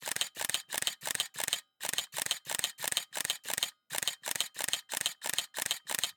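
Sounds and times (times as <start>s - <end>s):
Pentax KS2 DSLR camera shutter firing in rapid bursts: 0.0s - 6.1s.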